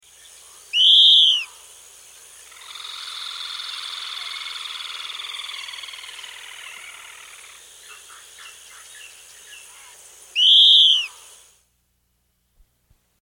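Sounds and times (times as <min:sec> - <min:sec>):
Yellow-bellied elaenia calling in South America: 0:00.4 - 0:01.7, 0:02.4 - 0:11.4.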